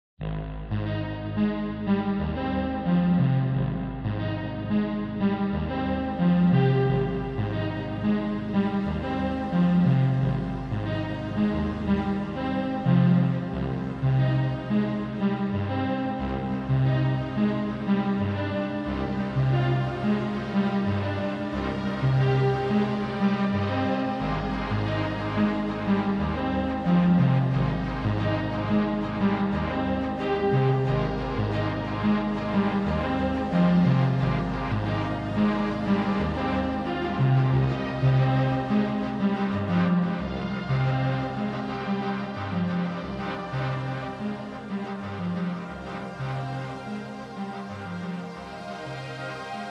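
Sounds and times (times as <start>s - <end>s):
vintage string instruments playing: 0.9s - 49.6s.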